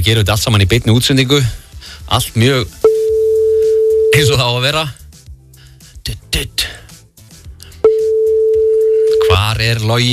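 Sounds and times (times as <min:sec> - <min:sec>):
speech: 0:00.0 - 0:02.8, 0:04.1 - 0:05.0, 0:06.1 - 0:06.7, 0:09.3 - 0:10.1
telephone call tone from an unanswered call: 0:02.8 - 0:04.4, 0:07.8 - 0:09.5.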